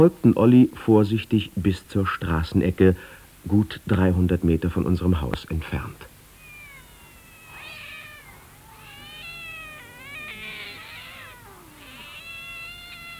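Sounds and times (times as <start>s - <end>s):
speech: 0.0s - 6.1s
low steady hum: 0.0s - 13.1s
many cats meowing and caterwauling at a cat gathering at a street corner: 5.2s - 13.1s.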